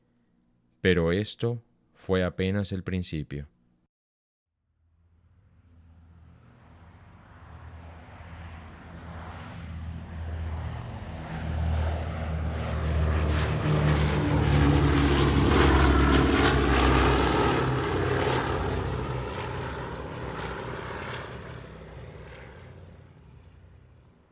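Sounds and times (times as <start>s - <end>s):
speech: 0.8s - 3.5s
propeller airplane droning overhead: 5.0s - 24.3s.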